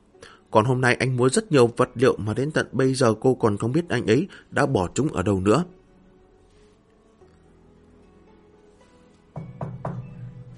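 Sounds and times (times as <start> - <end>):
speech: 0.5 - 5.8
dull knocks on a door: 9.4 - 10.4.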